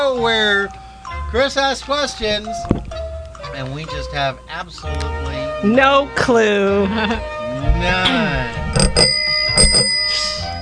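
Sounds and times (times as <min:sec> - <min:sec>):
speech: 0:00.1 - 0:02.8, 0:03.5 - 0:10.0
bright bell ringing: 0:08.7 - 0:10.5.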